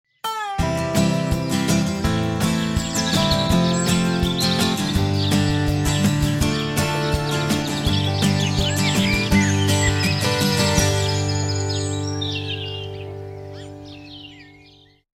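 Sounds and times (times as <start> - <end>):
birds singing cheerfully on an early summer morning: 0.0 - 15.1.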